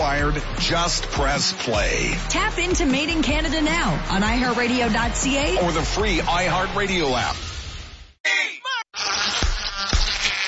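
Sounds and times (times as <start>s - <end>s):
speech: 0.3s - 7.5s
mosquito buzzing: 9.0s - 10.4s.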